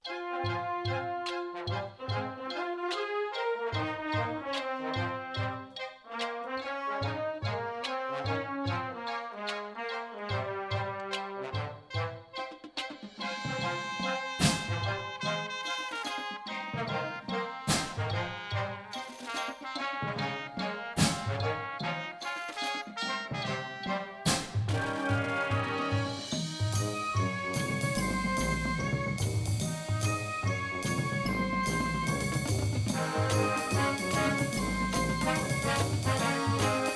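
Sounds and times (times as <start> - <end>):
music: 0.0 - 36.9
drumline cymbals: 12.4 - 36.9.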